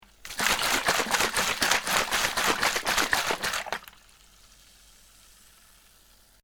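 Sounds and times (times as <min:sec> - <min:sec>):
bottle shaking: 0:00.1 - 0:04.0.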